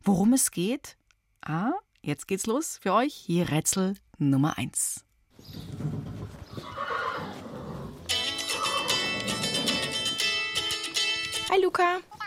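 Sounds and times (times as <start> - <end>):
speech: 0.0 - 5.7, 11.5 - 12.1
horse whinnying: 5.8 - 10.2.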